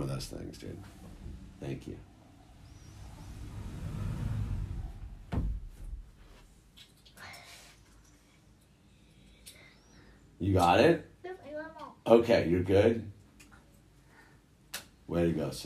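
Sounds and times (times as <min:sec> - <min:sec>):
low rumbling shuffle: 0:00.0 - 0:06.6
speech: 0:00.1 - 0:02.1, 0:10.4 - 0:11.1, 0:12.0 - 0:13.2, 0:15.1 - 0:15.6
closet door shutting: 0:05.3 - 0:06.2.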